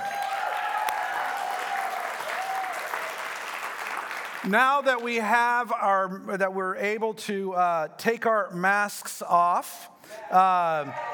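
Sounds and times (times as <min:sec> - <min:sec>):
shouts: 0:00.0 - 0:03.1
in-house audience applauding and cheering: 0:00.0 - 0:05.0
speech: 0:04.4 - 0:11.1.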